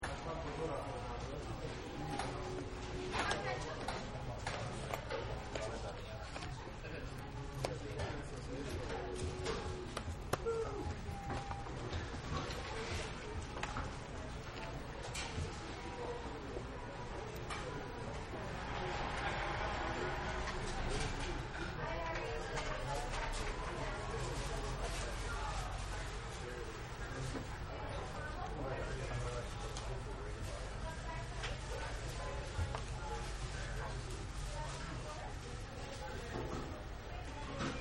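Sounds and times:
people eating in a fast food restaurant eating area: 0:00.0 - 0:37.7
people ordering food in a fast food restaurant: 0:00.0 - 0:37.7.

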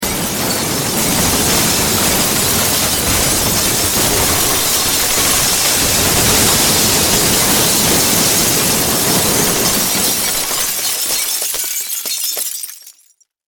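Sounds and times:
long crash impact of wood and glass: 0:00.0 - 0:13.4.

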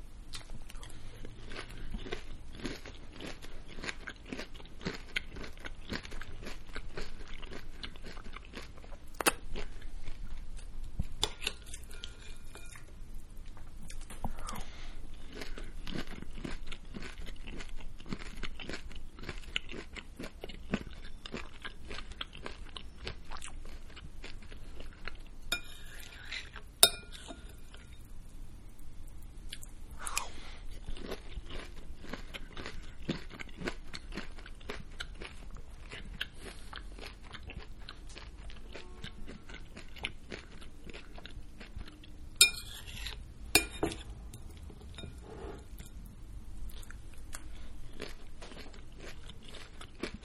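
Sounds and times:
person eating cereal: 0:00.3 - 0:50.2.

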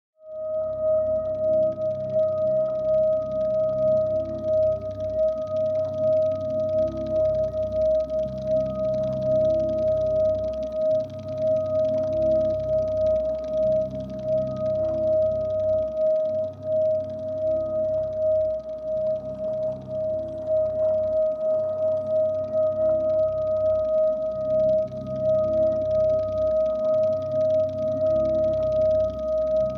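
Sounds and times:
synth bell drone with chopper vibrato texture: 0:00.2 - 0:29.7.

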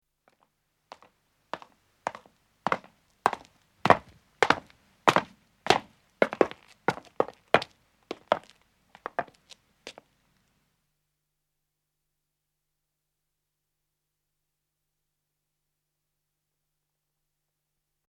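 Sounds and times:
footsteps of two men descending stone: 0:00.3 - 0:10.0.

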